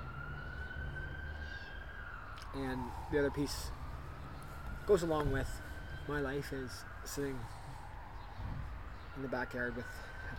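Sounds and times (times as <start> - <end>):
busy Friday evening traffic in London, Ontario: 0.0 - 10.3
emergency vehicle siren: 0.0 - 10.3
speech: 2.5 - 3.8, 4.9 - 7.6, 9.2 - 10.1.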